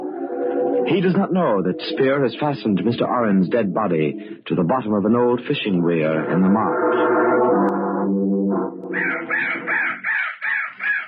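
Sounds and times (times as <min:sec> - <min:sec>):
speech: 0:00.8 - 0:09.8
crow cawing: 0:08.9 - 0:11.0.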